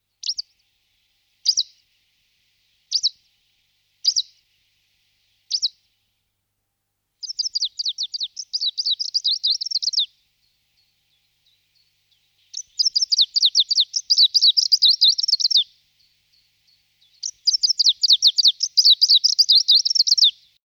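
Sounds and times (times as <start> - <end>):
greenish warbler singing: 0.0 - 0.8, 1.4 - 1.9, 2.8 - 3.3, 4.0 - 4.5, 5.4 - 5.8, 7.2 - 20.6.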